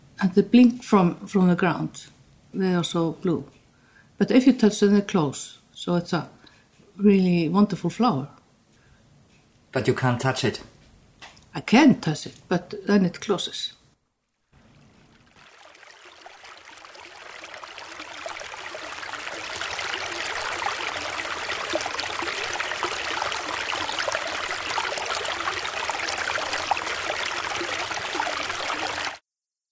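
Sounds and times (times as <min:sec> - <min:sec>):
speech: 0:00.2 - 0:03.6, 0:04.2 - 0:06.4, 0:07.0 - 0:08.4, 0:09.7 - 0:10.7, 0:11.6 - 0:13.8
flowing river stream rushing: 0:14.6 - 0:29.2.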